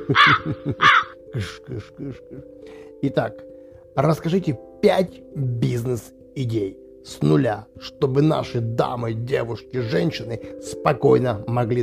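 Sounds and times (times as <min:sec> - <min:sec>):
laughter: 0:00.0 - 0:02.4
crow cawing: 0:00.1 - 0:01.2
speech: 0:00.1 - 0:11.8.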